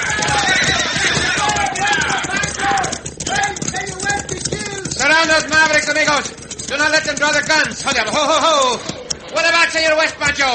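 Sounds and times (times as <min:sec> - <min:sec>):
hoofbeats of mounted horses galloping away: 0:00.0 - 0:10.5
speech: 0:06.2 - 0:10.5.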